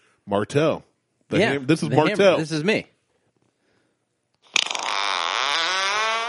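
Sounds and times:
speech: 0.3 - 2.9
fart sound effect from an app: 4.4 - 6.2.

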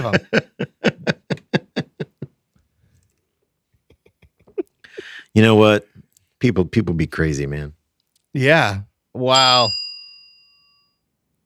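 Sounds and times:
speech: 0.0 - 0.7, 5.3 - 7.8, 8.4 - 9.8
laughter: 0.0 - 2.3
bell ding: 9.4 - 11.1.

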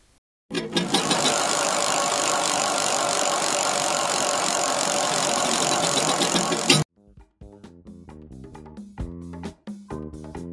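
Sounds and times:
prize wheel spinning with rapid rattling clatter: 0.5 - 6.9.

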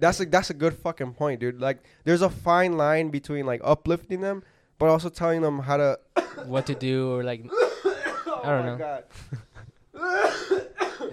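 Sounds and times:
speech: 0.0 - 7.8, 8.4 - 9.4
coughing fit: 6.2 - 8.7, 9.9 - 11.1.

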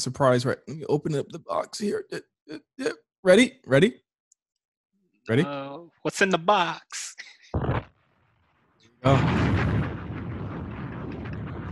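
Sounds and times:
speech: 0.0 - 4.0, 5.3 - 7.7, 9.0 - 9.6
bomb-drop explosion sound effect: 7.6 - 7.9, 9.0 - 11.7.

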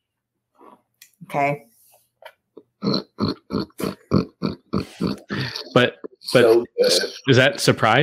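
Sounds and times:
speech: 1.3 - 1.7, 5.8 - 8.0
person imitating pig grunts with nasal snorts: 2.8 - 7.7.

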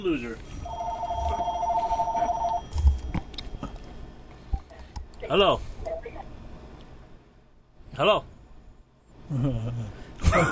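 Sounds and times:
speech: 0.0 - 0.6, 5.3 - 5.7, 8.0 - 8.3, 9.3 - 10.5
house landline telephone ringing with an electronic trill: 0.5 - 3.6.

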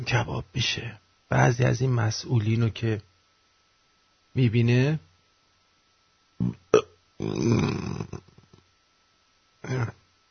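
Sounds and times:
speech: 0.0 - 3.1, 4.4 - 5.1, 6.4 - 6.6, 7.2 - 8.3, 9.6 - 10.0
person burping after drinking soda: 6.4 - 8.6, 9.6 - 10.0.

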